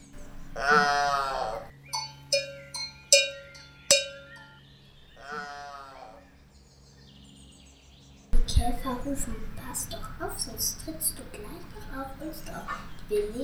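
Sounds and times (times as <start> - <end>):
cowbell clanging: 0.1 - 1.3, 1.9 - 4.6, 9.8 - 13.4
cow mooing on a cow meadow: 0.2 - 1.7, 5.2 - 6.2
speech: 8.9 - 13.4.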